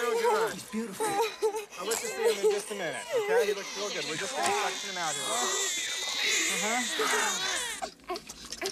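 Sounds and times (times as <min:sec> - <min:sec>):
newborn baby boy crying after birth: 0:00.0 - 0:08.3
speech: 0:00.5 - 0:08.3.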